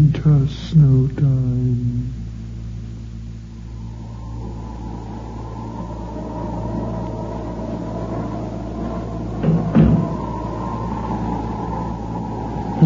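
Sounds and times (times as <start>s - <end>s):
steady low rumble: 0.0s - 12.8s
speech: 0.4s - 1.5s
distant door thudding shut: 9.4s - 10.1s.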